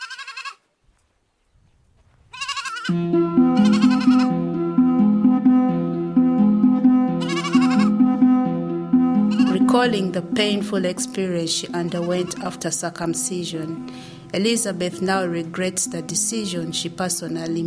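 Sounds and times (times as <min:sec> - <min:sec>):
goat bleating: 0:00.0 - 0:00.6, 0:02.3 - 0:03.0, 0:03.6 - 0:04.3, 0:07.2 - 0:07.9, 0:09.3 - 0:09.7, 0:11.8 - 0:12.6
speech: 0:02.9 - 0:03.2, 0:09.7 - 0:17.6
droning musical backing: 0:02.9 - 0:17.3.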